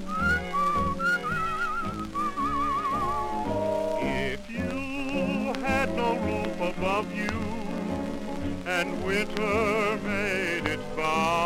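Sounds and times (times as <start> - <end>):
cheerful human whistling a bright wavering melody: 0.0 - 5.6
soft instrumental backing: 0.0 - 11.4.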